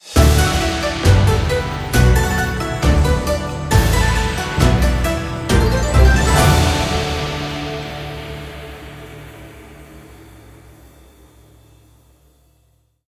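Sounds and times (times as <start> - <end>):
jackpot win: 0.6 - 7.6.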